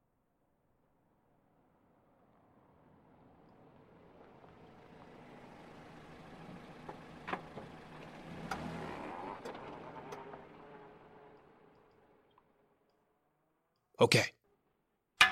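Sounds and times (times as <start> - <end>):
car engine and tire noise passing by: 1.8 - 12.6
speech: 14.0 - 14.4.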